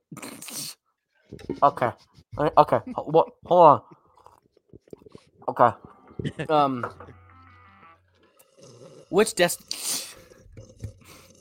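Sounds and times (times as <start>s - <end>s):
person slurping a drink: 0.1s - 0.8s, 4.0s - 5.4s, 8.3s - 11.3s
voiced murmurs and mouth noises: 0.1s - 7.2s, 8.2s - 11.3s
speech: 1.3s - 4.0s, 5.5s - 7.2s, 9.1s - 10.0s.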